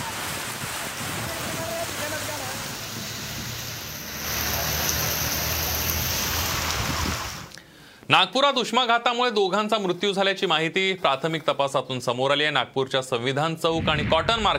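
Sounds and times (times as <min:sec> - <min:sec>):
unseasonal rain falling over Sangli city and its rural surroundings: 0:00.0 - 0:07.6
speech: 0:08.1 - 0:14.5.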